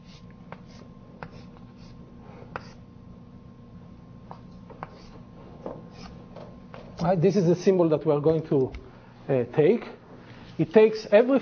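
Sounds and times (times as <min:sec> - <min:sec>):
soft scratching of symbols being written on a board during a mathematics lecture: 0:00.0 - 0:02.8, 0:04.3 - 0:06.2
speech: 0:07.0 - 0:10.0, 0:10.6 - 0:11.3.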